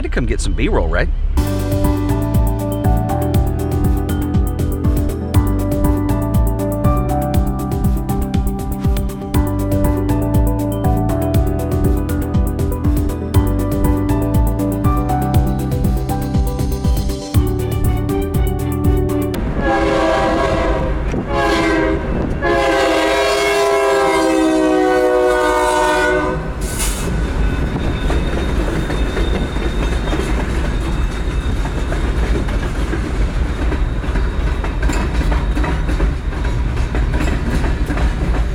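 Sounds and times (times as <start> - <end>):
speech: 0.0 - 1.8
train rumbling past: 0.0 - 38.5
train horn blasts: 19.3 - 27.0
train wheels clattering over the rails: 26.8 - 38.5.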